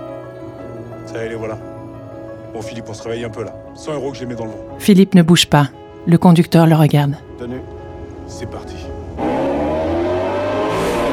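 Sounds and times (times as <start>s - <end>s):
speech: 1.1s - 1.8s, 2.5s - 9.4s
rushing road noise: 9.0s - 11.1s
car engine roaring as it speeds into a tunnel: 9.2s - 11.1s.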